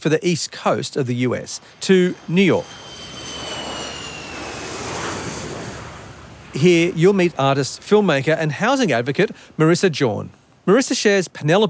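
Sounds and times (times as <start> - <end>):
speech: 0.0 - 2.9, 6.6 - 11.6
faint high-pitched whine: 0.0 - 11.6
airplane engine roar in flight: 0.5 - 8.0.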